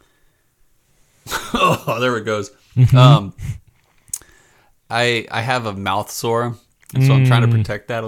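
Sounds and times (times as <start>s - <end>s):
person coughing: 1.3s - 2.0s
speech: 1.5s - 3.6s, 4.9s - 8.0s.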